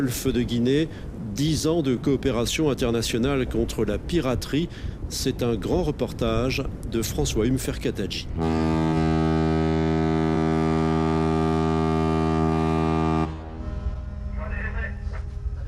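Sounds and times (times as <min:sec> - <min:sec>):
speech: 0:00.0 - 0:08.7
low rumble of harbor noise: 0:00.0 - 0:15.6
ship horn blasting before departure in port: 0:08.4 - 0:15.1.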